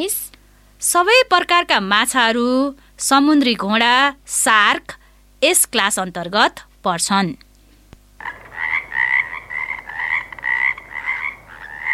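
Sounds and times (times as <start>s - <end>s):
speech: 0.0s - 0.2s, 0.8s - 7.5s
frogs croaking in a pond filled with rainwater during the rainy season: 8.2s - 11.9s.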